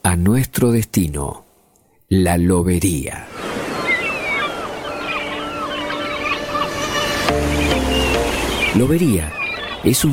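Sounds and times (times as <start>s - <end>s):
speech: 0.1s - 1.4s, 2.1s - 3.4s, 8.8s - 10.1s
ocean surf breaking on the shore at La Lobería beach, Río Negro: 3.2s - 9.9s
birds calling over the surf: 3.3s - 10.1s.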